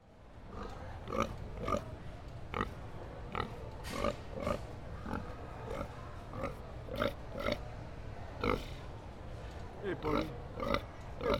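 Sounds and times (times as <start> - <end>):
low rumbling background noise at a state fair: 0.0 - 11.3
pig giving short nasal grunts and oinks at a state fair: 0.5 - 1.9, 2.5 - 7.6, 8.4 - 8.8, 10.0 - 11.3.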